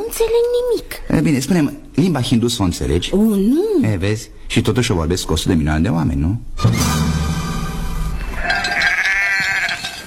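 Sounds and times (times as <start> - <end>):
speech: 0.1 - 7.3
sheep bleating: 8.4 - 10.0.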